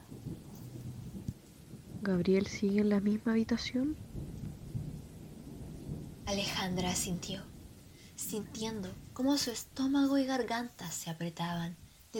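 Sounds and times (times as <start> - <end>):
cold late-winter rain falling outside a house: 0.0 - 12.1
speech: 2.0 - 4.1, 6.3 - 7.5, 8.2 - 12.1.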